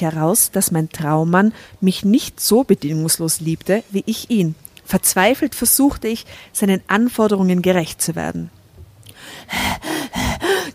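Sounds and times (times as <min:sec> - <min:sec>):
speech: 0:00.0 - 0:08.6, 0:09.3 - 0:09.8
person panting and gasping for breath: 0:09.2 - 0:10.7.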